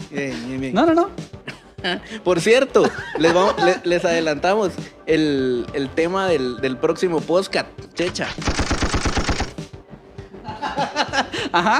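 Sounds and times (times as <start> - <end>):
speech: 0.1 - 8.8, 11.5 - 11.7
laughter: 2.8 - 4.0, 10.4 - 11.7
machine gun fire: 8.0 - 9.6
scattered rumbling and crackling: 8.0 - 9.6.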